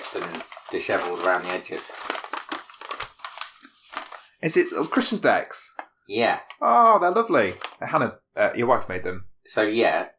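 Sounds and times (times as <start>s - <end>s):
wrapping paper crinkling as a gift of handmade Christmas decorations is unwrapped: 0.0s - 5.8s, 6.8s - 7.9s
speech: 0.1s - 2.2s, 4.4s - 10.1s.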